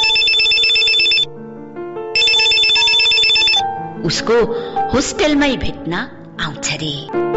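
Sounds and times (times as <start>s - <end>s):
telephone ringing with electronic warbling ringtone: 0.0s - 1.3s, 2.2s - 3.7s
speech: 4.0s - 7.2s.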